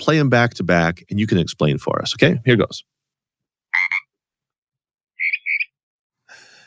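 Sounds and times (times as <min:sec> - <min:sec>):
speech: 0:00.0 - 0:02.9
Pacific tree frog two-part ribbit: 0:03.7 - 0:04.1, 0:05.2 - 0:05.8
raspy croak-like burst: 0:03.7 - 0:04.1, 0:05.2 - 0:05.7
mockingbird mimicking a tree frog with a two-note call: 0:05.2 - 0:05.7.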